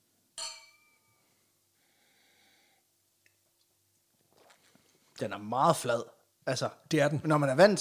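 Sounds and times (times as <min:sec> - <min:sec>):
two glasses clinking in a toast: 0:00.4 - 0:01.2
small shuffling noises: 0:03.4 - 0:05.3
speech: 0:05.2 - 0:07.7.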